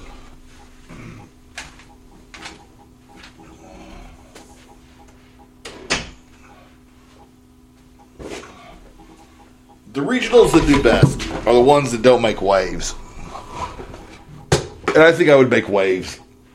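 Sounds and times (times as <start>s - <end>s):
speech: 10.0s - 13.0s, 15.0s - 16.2s
door being closed: 10.3s - 14.2s.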